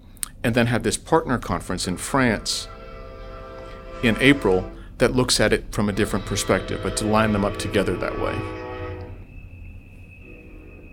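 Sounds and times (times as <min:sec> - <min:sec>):
speech: 0:00.4 - 0:02.7, 0:04.0 - 0:08.6
train rumbling past: 0:01.6 - 0:10.9
train horn blast: 0:02.1 - 0:05.0, 0:05.8 - 0:09.4, 0:10.2 - 0:10.9.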